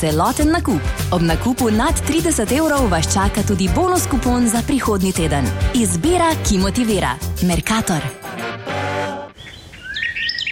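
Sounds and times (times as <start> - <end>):
speech: 0.0 - 8.5
small birds chirping: 9.4 - 10.4.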